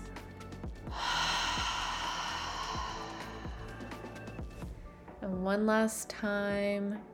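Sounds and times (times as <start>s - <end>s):
deep breath in through the nose and out through the mouth: 0.8s - 4.7s
speech: 5.3s - 7.1s.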